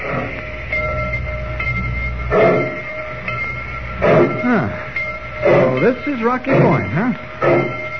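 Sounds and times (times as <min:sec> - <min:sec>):
train pulling out of a station rumbling: 0:00.0 - 0:07.9
speech: 0:05.9 - 0:07.7.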